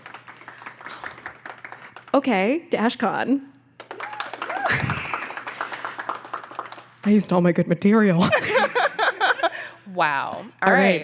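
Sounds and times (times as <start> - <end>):
audience clapping to vote for a contestant: 0.0 - 2.5, 3.8 - 7.2
speech: 2.2 - 3.5, 4.7 - 4.9, 7.1 - 9.0, 9.9 - 11.0
laughter: 4.5 - 5.6, 8.2 - 9.8.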